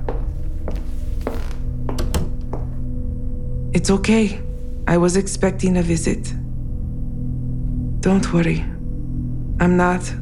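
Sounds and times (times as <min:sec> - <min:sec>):
steady low hum: 0:00.0 - 0:10.2
door closing: 0:01.2 - 0:02.6
speech: 0:03.8 - 0:06.4, 0:08.0 - 0:08.7, 0:09.6 - 0:10.2.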